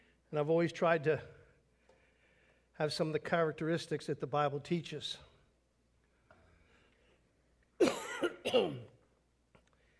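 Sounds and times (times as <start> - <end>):
speech: 0.3 - 1.4, 2.8 - 5.3, 8.5 - 8.9
man clearing his throat: 7.8 - 9.0
man coughing: 7.8 - 9.0.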